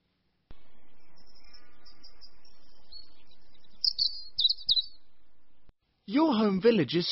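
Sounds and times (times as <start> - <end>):
birds chirping and tweeting in a village: 0.5 - 5.8
speech: 6.1 - 7.1.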